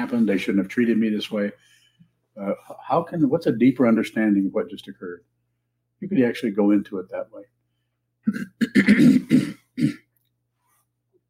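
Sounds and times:
speech: 0.1s - 1.8s, 2.4s - 5.3s, 6.0s - 7.6s, 8.2s - 10.0s
person clearing throat: 8.3s - 10.1s.

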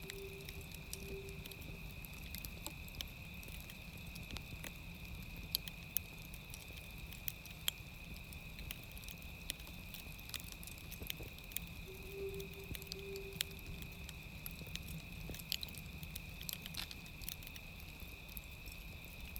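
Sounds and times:
constant high whine: 0.0s - 1.8s, 11.9s - 14.1s
soft low hoot-like tone: 0.0s - 1.8s, 11.8s - 14.1s
steady low rumble: 0.0s - 3.4s, 11.0s - 16.7s
fire crackling with pops and snaps: 0.0s - 19.3s.

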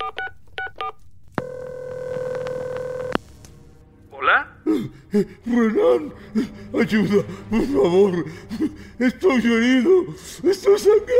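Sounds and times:
touch-tone beeps of a phone number being dialed: 0.0s - 3.2s
speech: 5.1s - 11.1s.

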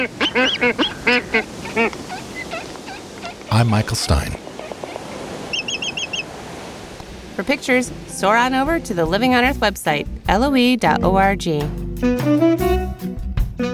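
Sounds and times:
speech: 0.0s - 0.9s, 3.6s - 4.4s, 7.4s - 12.8s
black-footed albatross honking calls: 0.0s - 6.4s.

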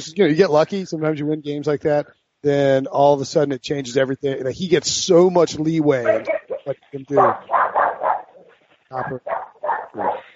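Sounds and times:
speech: 0.0s - 7.6s, 8.9s - 10.3s
dog barking: 6.0s - 10.3s.

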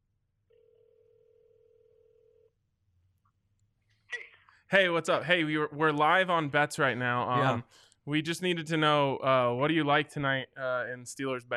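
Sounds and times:
outgoing phone call electronic ringing tone: 0.6s - 2.5s
speech: 4.7s - 11.5s.

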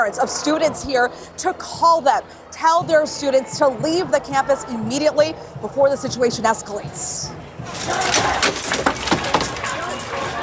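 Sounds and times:
speech: 0.0s - 9.0s
people shouting: 7.6s - 10.4s
protesters smashing through building doors: 7.7s - 10.4s.

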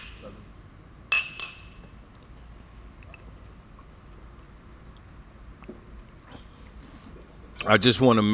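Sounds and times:
low quiet hum: 0.0s - 8.3s
glasses clinking in a toast: 1.1s - 2.1s
speech: 7.6s - 8.3s.

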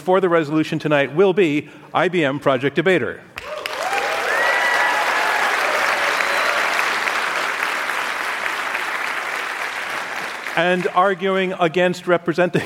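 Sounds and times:
speech: 0.0s - 3.3s, 10.6s - 12.6s
faint whistles and cheers from an audience: 3.4s - 7.1s
large audience applauding: 3.4s - 11.0s.

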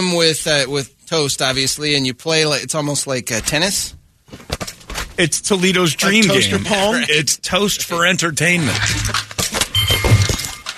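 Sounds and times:
speech: 0.0s - 4.5s, 5.2s - 9.3s
glass shattering effect from a video game: 9.1s - 10.7s.

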